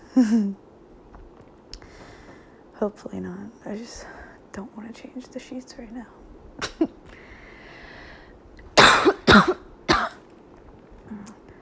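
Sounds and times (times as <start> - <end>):
speech: 0.2 - 0.6, 2.8 - 7.1
quiet breathing: 1.8 - 2.8, 3.8 - 4.6, 7.1 - 8.5
sharp coughs: 8.8 - 10.2.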